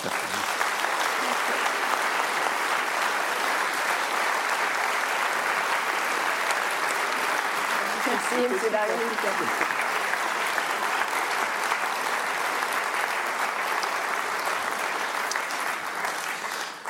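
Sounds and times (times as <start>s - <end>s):
audience applause: 0.0s - 16.8s.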